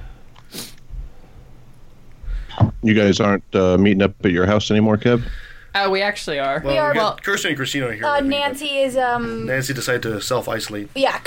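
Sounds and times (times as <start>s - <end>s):
low hum: 0.0s - 11.2s
person sneezing: 0.5s - 0.8s
faint low thump: 2.2s - 2.9s
speech: 2.8s - 11.2s.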